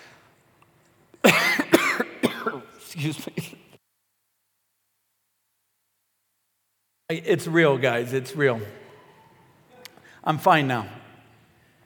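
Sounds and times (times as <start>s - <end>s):
man gagging and coughing: 1.2s - 3.7s
speech: 2.9s - 3.6s, 7.1s - 8.8s, 10.2s - 11.0s.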